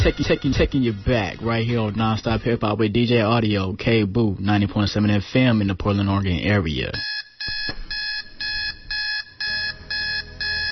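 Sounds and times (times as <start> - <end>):
speech: 0.1 - 7.1
alarm clock beeping in rapid electronic bursts: 7.0 - 10.7.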